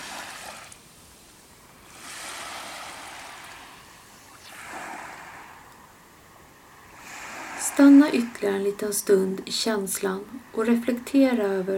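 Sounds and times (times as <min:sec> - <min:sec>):
ocean waves washing up on the shore: 0:00.0 - 0:06.1, 0:06.7 - 0:08.6
speech: 0:07.7 - 0:11.7.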